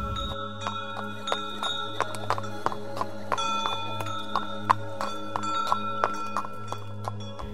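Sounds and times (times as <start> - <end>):
low continuous rumble: 0.0 - 0.6
caravan hooves clip-clopping at a walking pace: 0.0 - 7.5
jingling bells or harness clinks: 0.0 - 7.5.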